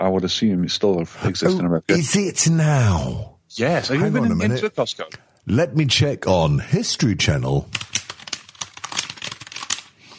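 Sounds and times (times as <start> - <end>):
speech: 0.0 - 8.0
fast typing on a computer keyboard: 7.6 - 10.0.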